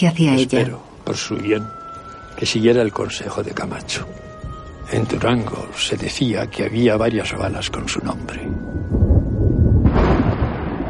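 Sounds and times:
speech: 0.0 - 1.8, 2.4 - 4.3, 4.9 - 9.1
thunder from a lightning strike on the horizon during a foggy rainy spell: 7.7 - 10.8.

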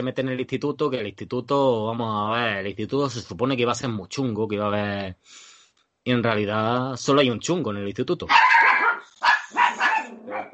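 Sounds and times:
speech: 0.0 - 8.7
dog barking loud yappy barks: 8.3 - 10.5.

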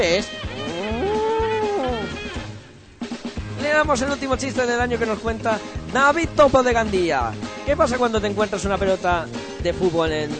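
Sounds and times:
speech: 0.0 - 0.5, 3.8 - 10.3
cow mooing: 0.5 - 2.3.

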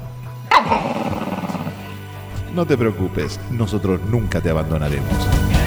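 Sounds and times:
dog barking: 0.5 - 2.0
dog rough rumbling grumbling: 0.5 - 2.5
speech: 2.6 - 5.5.

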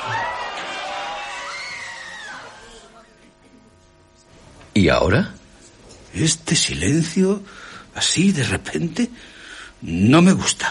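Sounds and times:
crowd of people shouting and screaming in the street: 0.0 - 2.8
speech: 4.8 - 5.4, 6.1 - 10.7.

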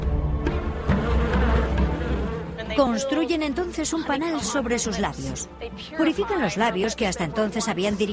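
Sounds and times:
swarm of bees buzzing: 0.2 - 5.4
speech: 2.8 - 8.1.

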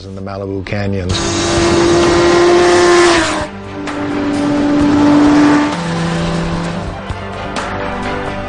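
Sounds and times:
Suzuki GSX-R sport motorcycle engine revving on Malibu canyon roads: 1.1 - 7.2.

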